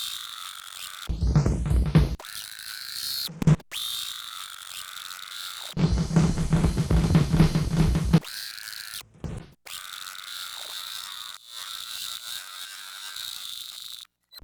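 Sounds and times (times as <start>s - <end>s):
high-speed tape: 1.1s - 2.2s, 5.8s - 8.2s, 9.2s - 9.5s.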